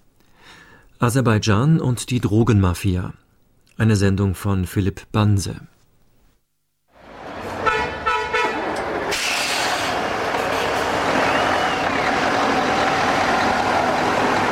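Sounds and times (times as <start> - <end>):
speech: 1.0 - 3.2, 3.8 - 5.7
traffic noise at a border crossing: 6.9 - 14.5
truck horn toots at a border crossing: 7.1 - 14.5.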